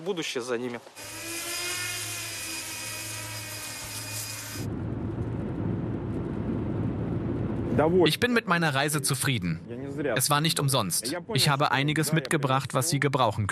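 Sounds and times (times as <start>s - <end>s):
speech: 0.0s - 1.3s, 7.8s - 13.4s
work drone rotors buzzing in flight: 0.9s - 4.7s
rough low rumbling noise: 3.8s - 11.4s.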